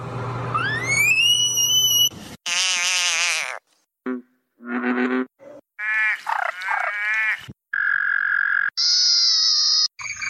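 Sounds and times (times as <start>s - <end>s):
African clawed frog Xenopus laevis calling: 0.6s - 8.8s.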